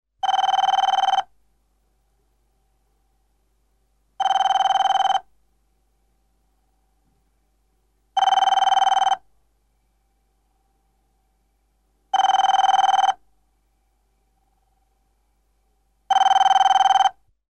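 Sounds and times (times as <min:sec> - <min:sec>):
new telephone ringing: 0:00.2 - 0:01.3, 0:04.2 - 0:05.2, 0:08.2 - 0:09.2, 0:12.1 - 0:13.2, 0:16.1 - 0:17.2.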